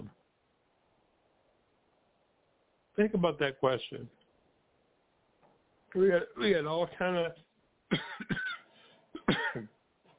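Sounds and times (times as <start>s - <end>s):
speech: 3.0s - 4.2s, 6.0s - 8.4s
person coughing softly: 7.9s - 9.7s.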